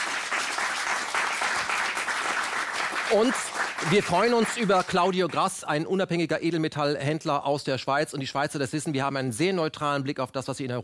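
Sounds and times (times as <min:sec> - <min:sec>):
audience applause: 0:00.0 - 0:05.3
speech: 0:03.1 - 0:10.8.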